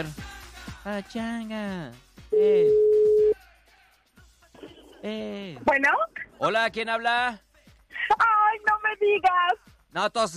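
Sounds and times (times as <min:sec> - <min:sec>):
speech: 0:00.0 - 0:03.0, 0:05.0 - 0:07.4, 0:08.2 - 0:10.3
telephone line tone as a radio studio dials a caller: 0:02.4 - 0:03.4
faint scattered noise: 0:04.4 - 0:06.8.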